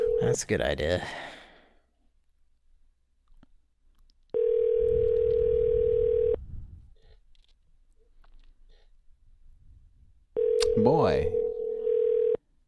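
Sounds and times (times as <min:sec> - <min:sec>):
telephone ringback tone with no answer: 0:00.0 - 0:00.4, 0:04.4 - 0:06.4, 0:10.4 - 0:12.4
speech: 0:00.2 - 0:01.4, 0:10.8 - 0:11.4.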